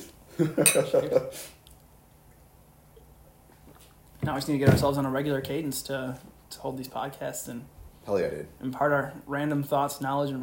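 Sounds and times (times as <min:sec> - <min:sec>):
speech: 0:00.4 - 0:01.6, 0:04.2 - 0:10.4
glasses clinking in a toast: 0:00.6 - 0:01.0.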